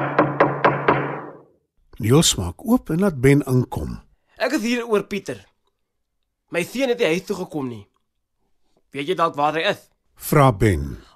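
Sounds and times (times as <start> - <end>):
knocking on a wooden door: 0.0 - 1.4
speech: 2.0 - 5.5, 6.5 - 7.9, 8.9 - 11.1.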